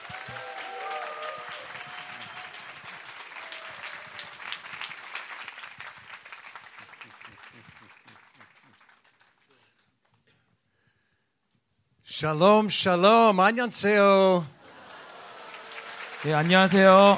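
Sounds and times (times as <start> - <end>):
voices cheering: 0.0 - 4.8, 14.6 - 17.1
audience applauding at a church worship service: 0.0 - 9.6, 14.6 - 17.1
speech: 12.2 - 14.6, 16.2 - 17.1.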